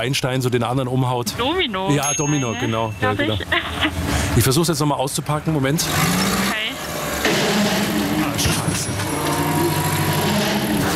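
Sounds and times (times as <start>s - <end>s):
speech: 0.0s - 6.6s
steady road noise: 1.2s - 10.9s
car engine humming and pulling away: 5.6s - 10.9s.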